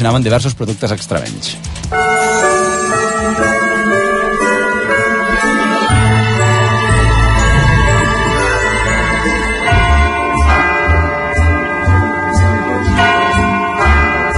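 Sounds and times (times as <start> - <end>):
speech: 0.0 - 2.5
clock chime ringing the quarters on a television broadcast: 1.9 - 14.3
deep pulsing low tone: 6.9 - 10.0.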